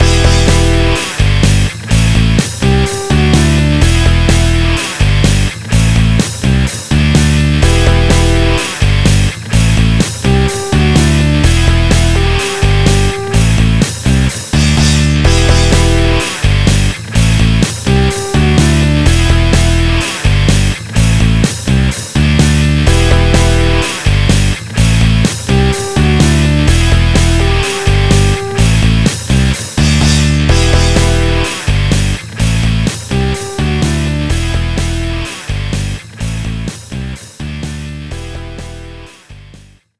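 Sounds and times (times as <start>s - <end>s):
rock menu music loop: 0.0s - 39.8s.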